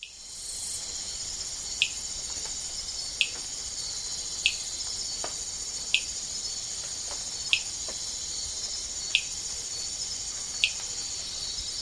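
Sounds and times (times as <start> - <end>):
high shrill insect chorus in the Ecuadorian Amazon: 0.0 - 11.8
Amazonian rain frog clicking in the Ecuadorian Amazon: 1.8 - 2.0.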